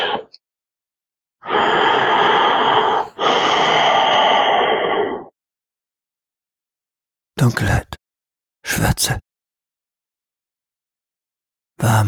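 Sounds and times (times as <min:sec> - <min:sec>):
person breathing deeply in and out: 0:01.4 - 0:05.3
speech: 0:07.4 - 0:08.0, 0:08.6 - 0:09.3, 0:11.8 - 0:12.0.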